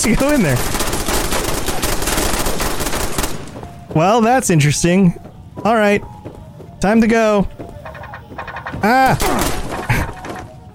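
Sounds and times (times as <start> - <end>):
speech: 0.0 - 0.9, 4.0 - 6.1, 6.8 - 7.7, 8.8 - 9.6
video game machine-gun bursts aimed at the player: 0.0 - 3.4.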